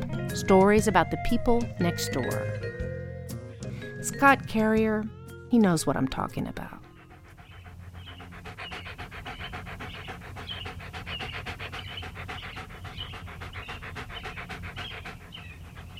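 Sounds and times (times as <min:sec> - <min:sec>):
speech: 0:00.4 - 0:02.7, 0:04.0 - 0:06.8
dog panting: 0:06.0 - 0:15.9.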